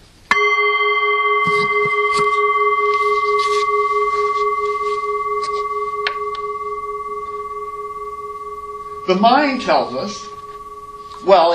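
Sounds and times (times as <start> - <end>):
gong strike with shimmering overtones: 0.3 - 11.5
faint soft rustles: 1.5 - 5.8
speech: 9.2 - 10.3, 11.2 - 11.5.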